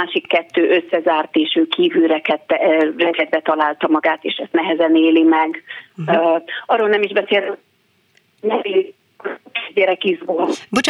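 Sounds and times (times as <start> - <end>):
speech: 0.0 - 7.7, 8.4 - 10.8
garbled voice through phone line: 6.0 - 6.2, 10.5 - 10.8.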